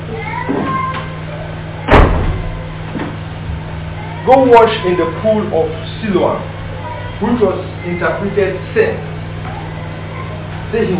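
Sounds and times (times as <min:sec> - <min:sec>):
faint room murmur: 0:00.0 - 0:10.9
steady low electrical hum: 0:00.0 - 0:10.9
door opening with a solid loud clunk: 0:01.8 - 0:03.2
speech: 0:04.3 - 0:06.6, 0:07.2 - 0:09.1, 0:10.7 - 0:10.9.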